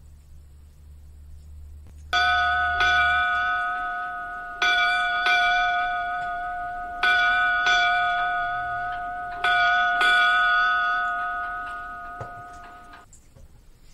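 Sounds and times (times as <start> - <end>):
ship's bell clanging: 2.1 - 13.1.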